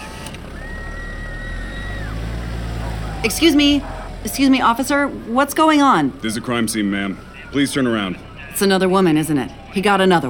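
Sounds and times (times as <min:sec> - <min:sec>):
street traffic on Hollywood Boulevard: 0:00.0 - 0:10.2
speech: 0:03.2 - 0:10.2.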